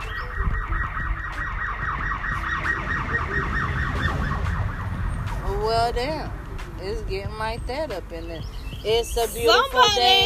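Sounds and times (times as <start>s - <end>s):
police siren wailing outside: 0.0s - 5.5s
low rumble of street noise: 0.0s - 10.2s
speech: 5.7s - 10.2s.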